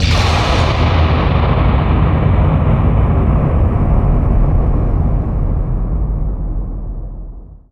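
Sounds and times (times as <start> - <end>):
halloween ambient sound: 0.0 - 7.6
thunder: 0.0 - 7.6.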